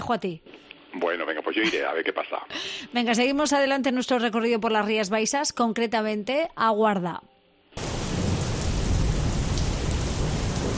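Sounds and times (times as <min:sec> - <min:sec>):
speech: 0:00.1 - 0:07.3
deep continuous rumble of thunder: 0:07.8 - 0:10.7
heavy rain: 0:07.8 - 0:10.7.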